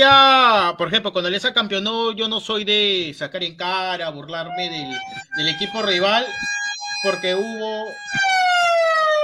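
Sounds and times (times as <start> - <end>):
speech: 0.0 - 8.4
stadium horn alarm blaring: 4.5 - 9.1.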